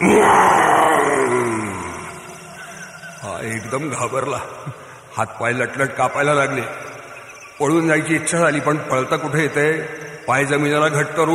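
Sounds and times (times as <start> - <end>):
wild animal roaring in a forest: 0.0 - 2.4
speech: 3.7 - 6.8, 7.6 - 11.3.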